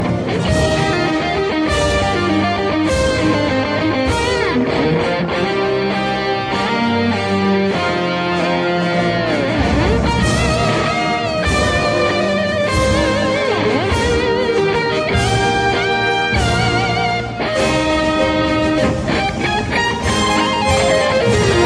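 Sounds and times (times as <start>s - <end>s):
national anthem played on guitar as ringtone: 0.0s - 21.6s.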